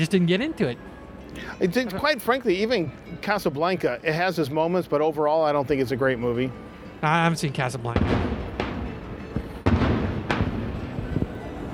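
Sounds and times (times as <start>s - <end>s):
speech: 0.0s - 8.3s
fireworks booming: 8.0s - 11.4s.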